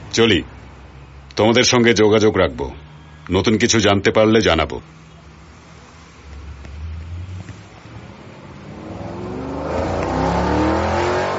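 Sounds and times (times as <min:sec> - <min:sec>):
speech: 0:00.2 - 0:00.6, 0:01.4 - 0:05.0
car engine revving as the car accelerates and drives off: 0:06.4 - 0:11.3.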